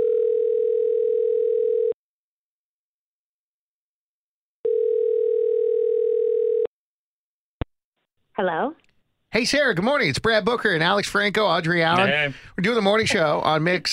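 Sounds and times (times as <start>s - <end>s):
telephone ringback tone: 0.0s - 2.0s, 4.6s - 6.7s
speech: 8.4s - 13.9s.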